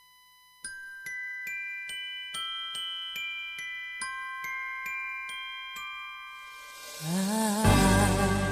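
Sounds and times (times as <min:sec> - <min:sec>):
bright chiming bells in a Christmas song intro: 0:00.6 - 0:08.4
shimmering swell of fuller instrumentation: 0:06.8 - 0:08.4.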